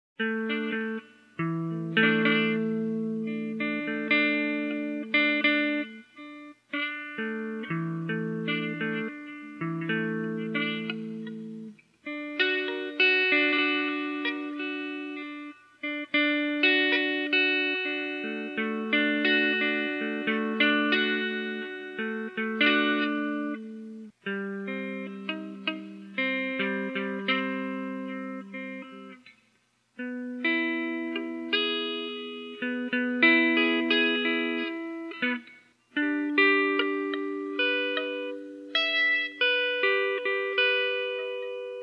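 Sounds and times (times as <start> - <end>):
guitar game music: 0.2 - 41.8.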